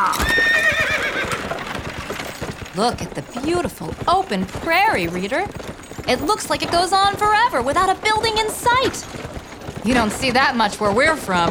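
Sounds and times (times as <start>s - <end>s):
horse pulling a chuck wagon whinnying: 0.0s - 2.8s
clip-clop hoofbeats of a horse pulling a chuck wagon: 0.0s - 11.4s
speech: 2.8s - 9.2s, 9.8s - 11.4s.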